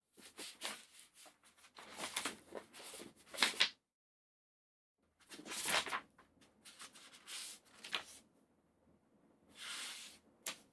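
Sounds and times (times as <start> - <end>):
pages turning: 0.2 - 3.7, 5.2 - 8.2, 9.5 - 10.7.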